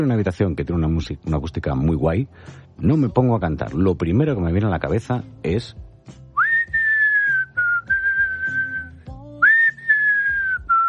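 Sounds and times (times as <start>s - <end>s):
speech: 0.0s - 6.2s
soft instrumental background with low plucked tones: 0.0s - 10.8s
person whistling a melody: 6.4s - 10.8s.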